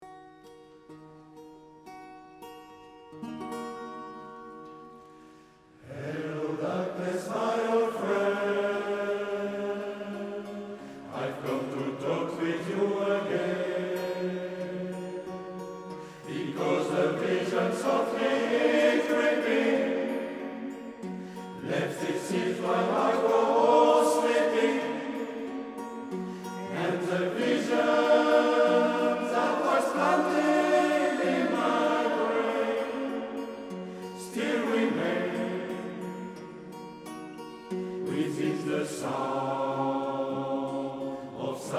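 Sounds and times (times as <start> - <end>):
music: 0.0 - 41.7.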